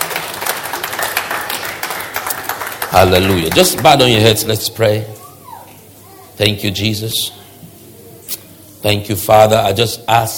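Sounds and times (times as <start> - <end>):
church congregation clapping in praise during a worship service: 0.0 - 4.2
speech: 2.9 - 5.2, 6.4 - 7.4, 8.8 - 10.3.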